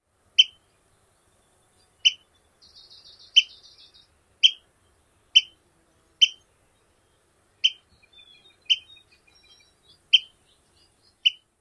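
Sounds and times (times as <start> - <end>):
peet calls: 0.4 - 0.6, 1.9 - 4.7, 5.3 - 5.6, 6.2 - 6.5, 7.6 - 11.5.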